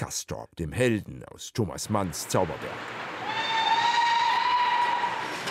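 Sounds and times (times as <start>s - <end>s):
speech: 0.1s - 3.5s
narrow-gauge steam train whistle near Davos: 3.2s - 5.4s.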